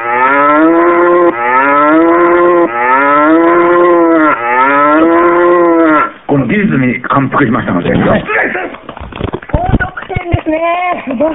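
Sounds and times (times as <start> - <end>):
cow mooing: 0.0 - 6.2
speech: 6.7 - 8.6, 10.6 - 11.3.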